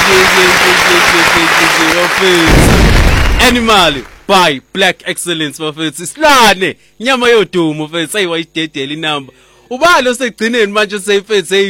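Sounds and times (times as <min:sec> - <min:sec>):
applause after a song: 0:00.0 - 0:04.3
speech: 0:02.2 - 0:02.8, 0:03.5 - 0:11.6.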